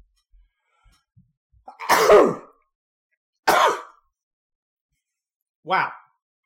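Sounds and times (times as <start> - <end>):
allergy sneeze or harsh cough: 1.7 - 2.5, 3.5 - 4.0
speech: 2.1 - 2.5, 5.7 - 6.0.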